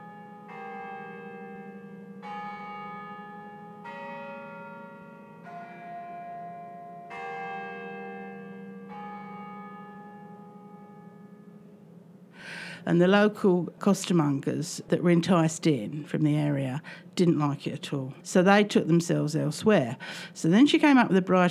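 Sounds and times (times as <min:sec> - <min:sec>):
bell tower chiming a slow melodic phrase: 0:00.0 - 0:12.0
speech: 0:12.8 - 0:21.5.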